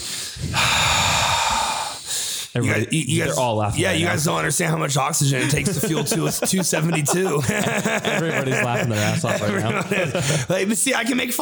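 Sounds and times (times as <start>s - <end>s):
long rough exhale pushed into a microphone: 0.0s - 2.6s
speech: 2.6s - 11.4s
laughter: 3.8s - 11.4s.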